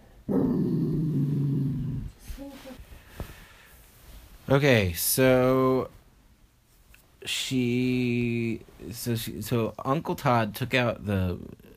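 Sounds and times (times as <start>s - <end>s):
dog growling low: 0.2s - 2.2s
speech: 4.5s - 6.0s, 7.2s - 11.6s.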